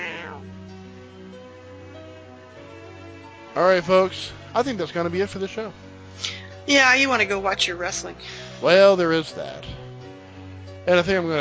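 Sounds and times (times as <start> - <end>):
female cat purring: 0.0 - 0.7
speech: 3.6 - 9.8, 10.9 - 11.3.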